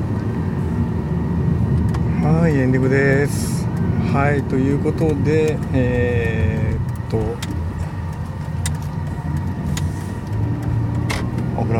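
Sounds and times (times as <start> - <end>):
car engine droning while driving, heard from inside the vehicle: 0.0 - 11.7
constant low road rumble: 0.0 - 11.7
faint clicks and knocks: 1.7 - 11.6
speech: 2.3 - 7.5.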